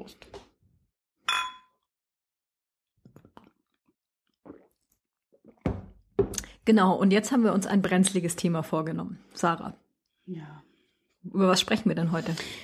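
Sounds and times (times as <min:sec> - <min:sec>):
speech: 0:00.0 - 0:00.4, 0:06.7 - 0:10.7, 0:11.3 - 0:12.6
glasses clinking in a toast: 0:01.3 - 0:01.7.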